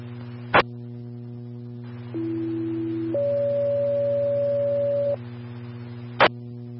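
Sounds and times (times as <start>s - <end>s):
constant electrical hum: 0.0s - 6.7s
fire dispatch alert tones over a radio: 2.1s - 5.2s.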